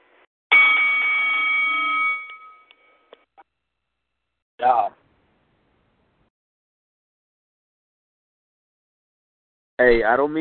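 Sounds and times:
loud bright bell ringing to start the round: 0.5s - 3.1s
speech: 9.8s - 10.3s.

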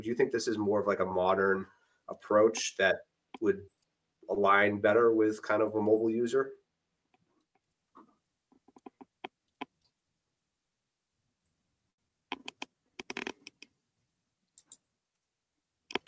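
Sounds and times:
speech: 0.0s - 6.6s
typing on a keyboard: 12.3s - 13.7s, 15.9s - 16.0s.

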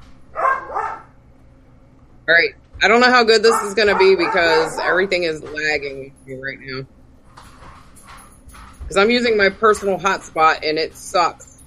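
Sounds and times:
dog barking: 0.4s - 1.1s, 3.5s - 4.9s
speech: 2.3s - 7.0s, 8.9s - 11.5s.

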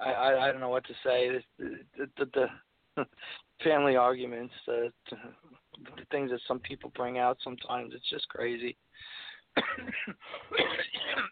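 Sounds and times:
speech: 0.1s - 11.3s
harsh raspy coughs: 9.6s - 11.3s
throat clearing: 9.6s - 11.3s.

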